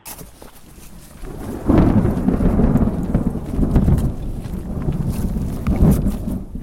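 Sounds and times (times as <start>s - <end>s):
faint crunching footsteps from a few hikers: 0.0s - 6.6s
steady rainstorm on the Snow Lake Trail near Snoqualmie Pass: 0.3s - 6.6s
deep rolling thunder on the Snow Lake Trail near Snoqualmie Pass: 0.6s - 6.6s.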